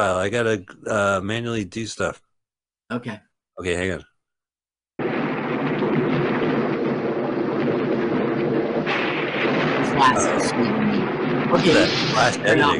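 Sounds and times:
speech: 0.0s - 2.2s, 2.9s - 4.1s, 10.0s - 12.7s
heavy rain hiss: 5.0s - 12.7s
thunderstorm rumble: 5.0s - 12.7s.

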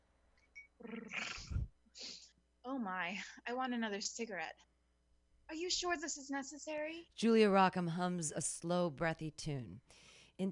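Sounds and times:
speech: 0.8s - 1.3s, 2.7s - 4.7s, 5.5s - 10.5s
person imitating a cat's purr: 0.8s - 1.7s.

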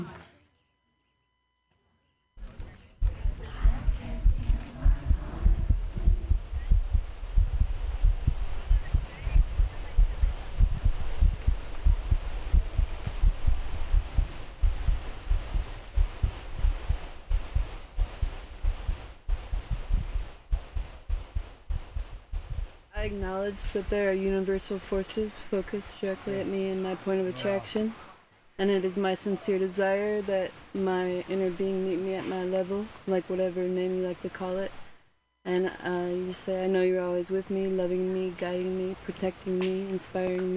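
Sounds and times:
soft hum: 0.0s - 40.5s
heartbeat thumping: 2.4s - 26.9s
speech: 23.1s - 34.8s, 35.4s - 40.5s.

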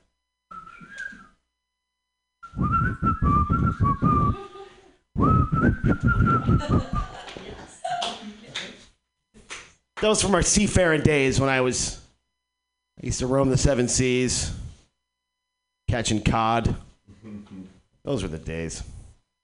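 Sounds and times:
person whistling a wavering tune: 0.5s - 1.4s, 2.4s - 4.4s, 5.2s - 7.1s
speech: 3.8s - 4.5s, 5.6s - 7.4s, 10.0s - 12.0s, 13.0s - 14.6s, 15.9s - 17.4s, 18.1s - 18.9s
laughter: 6.4s - 8.6s.

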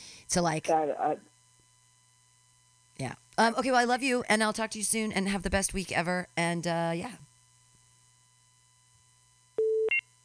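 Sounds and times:
speech: 0.3s - 1.3s, 3.0s - 7.3s
call waiting beep on a phone line: 9.6s - 10.0s.

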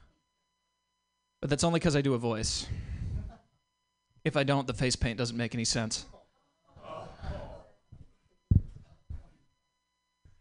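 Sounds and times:
speech: 1.4s - 2.9s, 4.2s - 6.2s
audience groaning at a joke: 6.8s - 7.7s.

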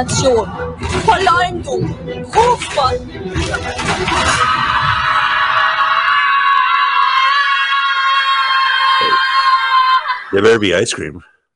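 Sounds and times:
speech: 0.0s - 5.0s, 10.3s - 11.3s
children screaming: 3.8s - 10.6s.

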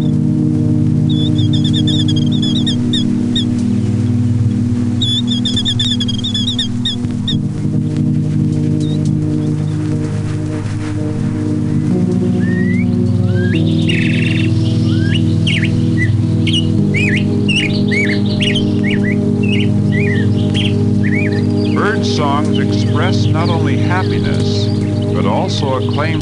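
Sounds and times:
steady low drone: 0.0s - 26.2s
killdeer calling excitedly in an upland meadow: 1.0s - 10.2s, 12.1s - 26.2s.

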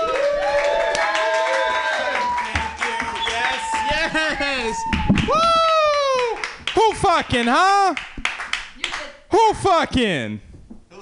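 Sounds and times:
audience whoops and shouting voices: 0.0s - 6.4s
comedy-show audience clapping: 0.0s - 9.1s
speech: 7.0s - 8.1s, 9.3s - 10.5s.

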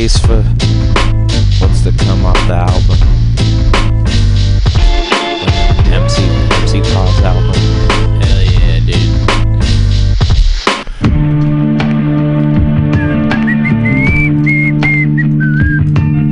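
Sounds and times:
speech: 0.0s - 0.6s
loud music beat with heavy bass: 0.0s - 16.2s
person whistling a short wavering melody: 13.0s - 15.9s.

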